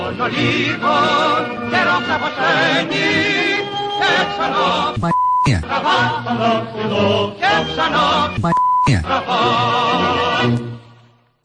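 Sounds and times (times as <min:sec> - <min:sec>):
speech: 0:00.2 - 0:10.8
short steady censor bleeps: 0:05.0 - 0:05.7, 0:08.4 - 0:09.1.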